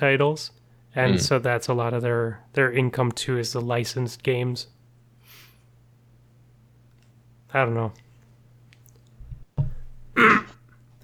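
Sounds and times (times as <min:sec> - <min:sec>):
speech: 0:00.0 - 0:04.8, 0:07.5 - 0:08.0
gravelly throat clearing: 0:10.2 - 0:11.0.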